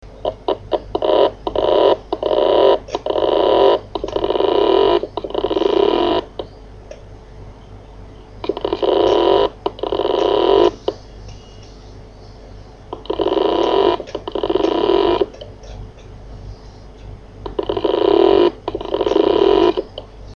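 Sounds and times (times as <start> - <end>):
Toshiba MK6025GAS hard drive with seized bearing: 0.2 - 6.6, 8.4 - 11.8, 13.0 - 16.2, 17.0 - 20.1.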